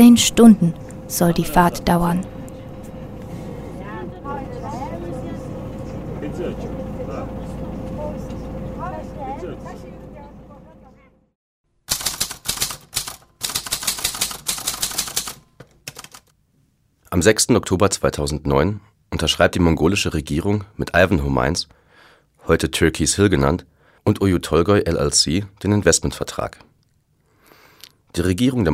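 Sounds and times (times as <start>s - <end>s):
speech: 0.0s - 2.4s, 17.1s - 21.8s, 22.4s - 26.7s, 28.1s - 28.7s
indistinct passenger chatter: 0.0s - 11.2s
bus engine droning: 0.0s - 11.3s
loud sharp clattering: 11.9s - 16.3s.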